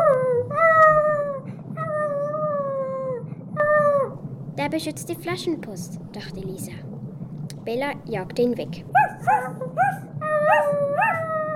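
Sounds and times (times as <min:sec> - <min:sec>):
wolf howling: 0:00.0 - 0:04.2, 0:08.9 - 0:11.5
low rumbling background: 0:00.0 - 0:11.5
speech: 0:04.6 - 0:06.9, 0:07.6 - 0:11.1.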